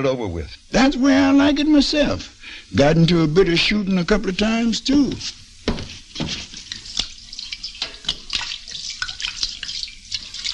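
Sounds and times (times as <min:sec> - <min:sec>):
speech: 0:00.0 - 0:05.4, 0:06.2 - 0:06.5
gin poured over hands to wash them: 0:06.1 - 0:10.5.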